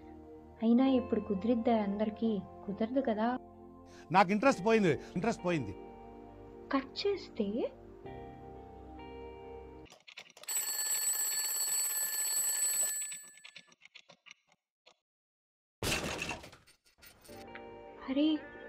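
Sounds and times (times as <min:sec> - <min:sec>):
speech: 0:00.6 - 0:05.9, 0:06.7 - 0:08.2, 0:18.1 - 0:18.5
alarm clock ringing in the morning: 0:10.5 - 0:13.5.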